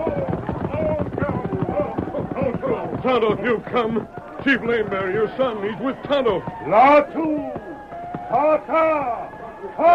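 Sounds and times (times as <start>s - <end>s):
galloping horse hooves: 0.0s - 9.8s
muddle of voices: 0.0s - 9.9s
speech: 3.0s - 7.6s, 8.3s - 9.9s.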